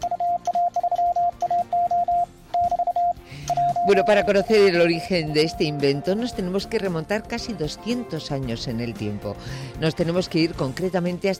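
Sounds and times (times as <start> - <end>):
Morse code telegraph beeps: 0.0 - 5.8
speech: 3.9 - 11.3.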